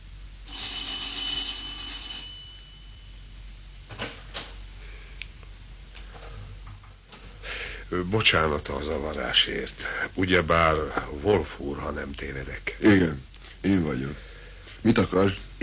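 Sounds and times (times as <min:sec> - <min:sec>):
doorbell ringing at a fifth-floor apartment door: 0:00.4 - 0:03.3
speech: 0:07.9 - 0:15.6.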